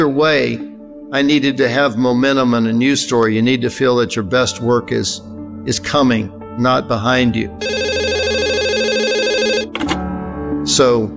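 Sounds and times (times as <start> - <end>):
speech: 0.0 - 7.8, 10.8 - 11.1
telephone ringing with warbling electronic trill: 7.6 - 10.0
telephone click: 9.4 - 10.0.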